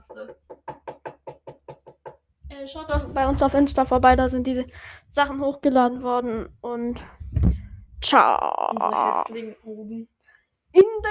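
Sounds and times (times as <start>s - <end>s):
knocking on a hard surface: 0.0s - 4.4s
speech: 0.2s - 0.4s, 2.6s - 10.1s, 10.8s - 11.1s.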